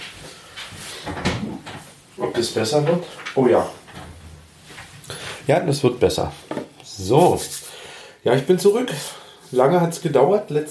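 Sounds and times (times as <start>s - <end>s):
speech: 1.0s - 1.2s, 2.3s - 3.8s, 5.5s - 7.6s, 8.2s - 10.6s
wooden door clunking and scraping as it swings open: 1.1s - 1.9s.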